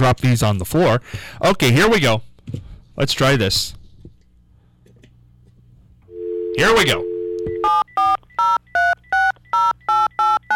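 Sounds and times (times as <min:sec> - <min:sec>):
speech: 0:00.0 - 0:03.8, 0:06.6 - 0:07.1
telephone dial tone: 0:06.1 - 0:10.5.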